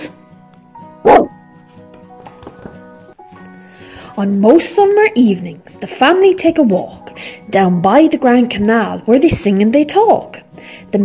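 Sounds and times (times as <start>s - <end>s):
dog barking: 1.0s - 1.4s
speech: 4.2s - 11.0s.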